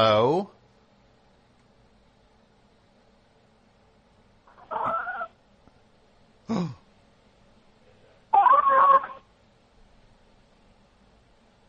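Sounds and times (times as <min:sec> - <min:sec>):
speech: 0:00.0 - 0:00.6
female cat meowing: 0:04.6 - 0:05.3, 0:08.4 - 0:09.2.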